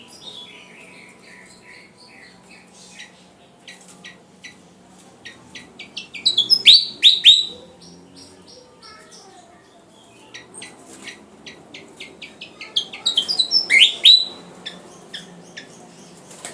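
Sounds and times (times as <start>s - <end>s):
Javan flycatcher singing vigorously: 0.0s - 16.5s.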